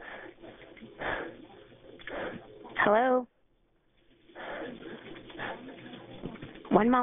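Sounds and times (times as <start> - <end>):
heavy breathing over a muffled narrow-band phone line: 0.0 - 2.6, 4.2 - 6.1
speech: 2.9 - 3.3, 6.8 - 7.0.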